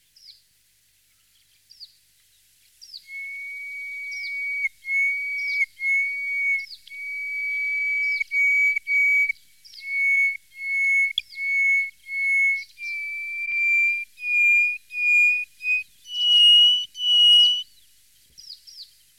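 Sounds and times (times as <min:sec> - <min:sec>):
Greater hoopoe-lark song: 0:02.8 - 0:17.8.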